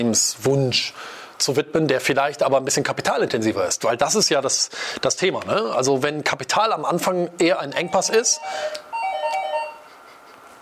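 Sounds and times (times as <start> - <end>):
speech: 0.0 - 8.8
electronic warbling ringing tone: 7.8 - 10.0.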